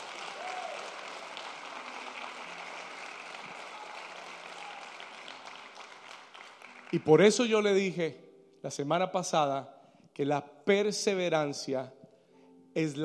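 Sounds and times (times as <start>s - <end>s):
audience applauding: 0.0s - 7.6s
speech: 6.9s - 12.0s, 12.8s - 13.0s.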